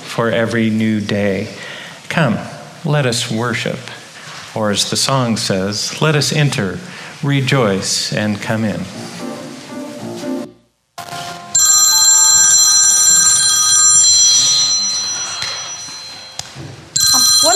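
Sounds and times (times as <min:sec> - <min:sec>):
speech: 0:00.2 - 0:09.3
loud metallic telephone bell ringing: 0:11.6 - 0:17.5.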